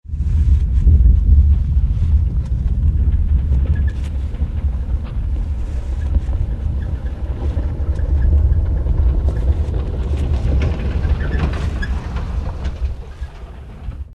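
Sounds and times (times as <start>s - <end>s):
earthquake rumble: 0.0s - 14.1s.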